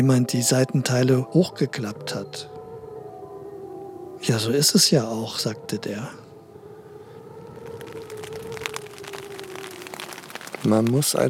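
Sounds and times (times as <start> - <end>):
speech: 0.0 - 2.6, 4.2 - 6.2, 10.6 - 11.2
steady rain pattering outside: 7.2 - 11.2.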